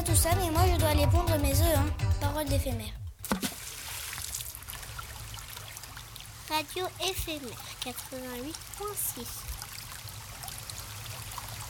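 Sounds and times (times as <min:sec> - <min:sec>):
speech: 0:00.2 - 0:03.0, 0:06.5 - 0:09.5
water flowing along a riverside: 0:03.4 - 0:11.6.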